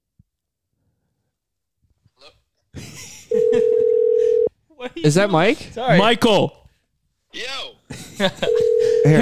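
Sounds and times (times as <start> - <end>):
phone call ringing tone: 3.3 - 4.5, 8.4 - 9.2
speech: 5.0 - 6.6, 7.4 - 9.2.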